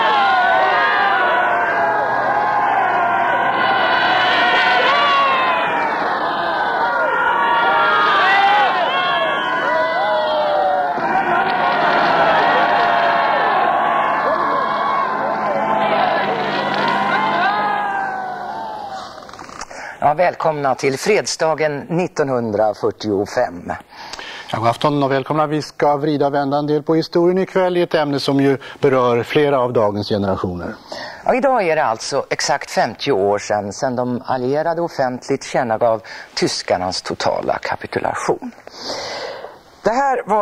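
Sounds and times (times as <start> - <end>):
large street crowd cheering and shouting at news of victory: 0.0 - 19.4
speech: 20.2 - 23.8, 24.5 - 39.1, 40.1 - 40.4.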